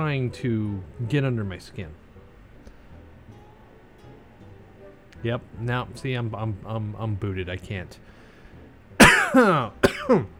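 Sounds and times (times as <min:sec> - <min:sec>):
speech: 0:00.0 - 0:02.0, 0:05.2 - 0:08.1, 0:09.3 - 0:10.3
faint hiss: 0:00.0 - 0:10.3
person coughing: 0:09.0 - 0:10.3.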